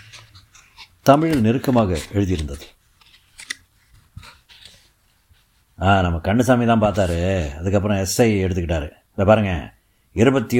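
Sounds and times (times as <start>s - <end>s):
pages of brownish paper registers being turned: 0.0s - 5.6s
speech: 1.0s - 2.8s, 5.8s - 10.5s.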